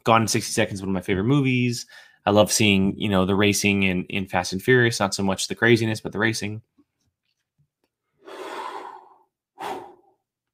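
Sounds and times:
speech: 0:00.0 - 0:06.8
person yawning: 0:08.3 - 0:10.2.

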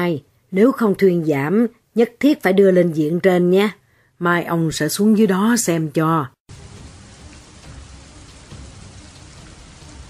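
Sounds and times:
speech: 0:00.0 - 0:06.4
heavy cold rain pouring down at night on the road: 0:06.5 - 0:10.0.

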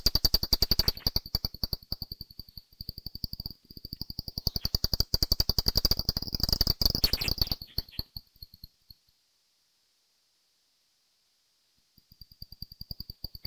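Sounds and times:
brown long-eared bat calls: 0:00.0 - 0:02.3, 0:03.4 - 0:08.2.

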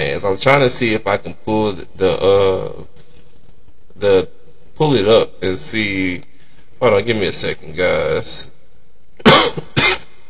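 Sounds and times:
speech: 0:00.2 - 0:03.0, 0:04.0 - 0:08.5
person coughing: 0:09.2 - 0:10.2.

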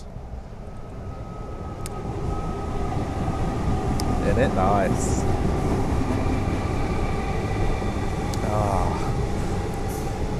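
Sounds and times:
passing suburban train rumbling: 0:00.0 - 0:10.3
speech: 0:04.4 - 0:05.4.

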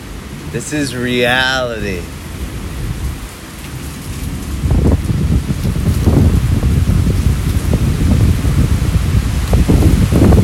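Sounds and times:
heavy rain pouring in a thunderstorm: 0:00.0 - 0:10.4
speech: 0:00.5 - 0:02.2
low rumbling thunder: 0:02.2 - 0:10.4.

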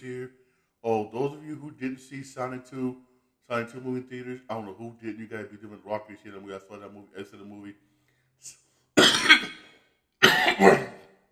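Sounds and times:
speech: 0:00.0 - 0:08.6
harsh forceful coughs: 0:09.0 - 0:11.1.

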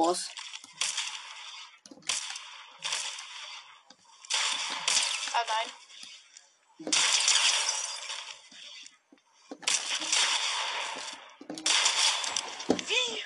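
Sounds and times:
video game revolver shots: 0:00.4 - 0:05.7, 0:06.9 - 0:08.4, 0:09.6 - 0:12.9.

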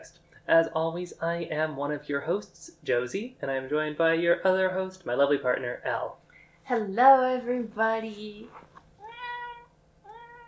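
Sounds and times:
speech: 0:00.0 - 0:08.6
pet cat meowing: 0:09.0 - 0:10.4.

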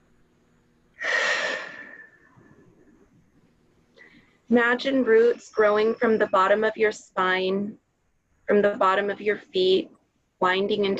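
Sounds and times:
deep breath during a guided breathing exercise: 0:01.0 - 0:02.8
speech: 0:04.5 - 0:07.8, 0:08.5 - 0:10.9.

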